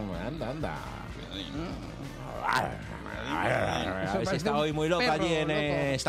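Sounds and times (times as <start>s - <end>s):
speech: 0.4s - 6.0s
crocodile deep rasping growl and roar: 2.2s - 4.0s.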